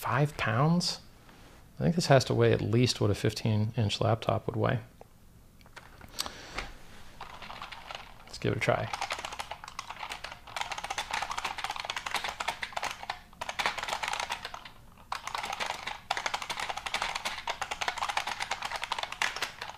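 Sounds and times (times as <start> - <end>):
speech: 0.0 - 1.1, 1.8 - 4.9, 8.4 - 9.0
loud computer keyboard being typed on: 7.2 - 19.7.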